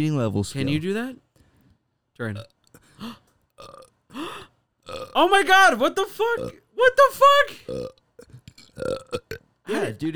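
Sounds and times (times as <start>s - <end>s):
speech: 0.0s - 1.2s, 2.2s - 4.3s, 4.9s - 8.0s, 8.8s - 10.1s
short croaky burps: 2.3s - 5.4s, 6.2s - 6.7s, 7.6s - 10.0s.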